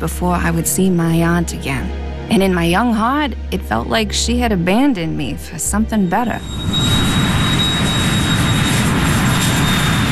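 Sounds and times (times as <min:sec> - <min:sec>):
speech: 0:00.0 - 0:07.0
jet airplane flying overhead near an airport: 0:06.4 - 0:10.1.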